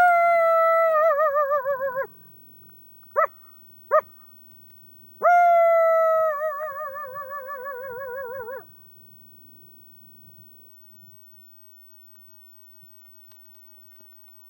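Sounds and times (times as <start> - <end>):
man imitating a coyote howl: 0.0 - 2.1, 5.2 - 8.7.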